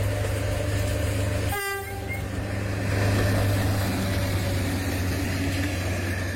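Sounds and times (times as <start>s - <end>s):
train rumbling along the rails: 0.0s - 6.3s
train horn blast: 1.5s - 2.2s.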